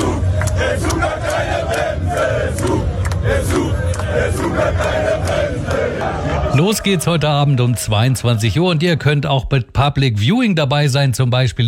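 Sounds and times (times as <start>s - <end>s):
football fans shouting: 0.0s - 9.0s
German football fans roaring in Times Square, New York: 0.0s - 9.4s
speech: 6.0s - 11.6s.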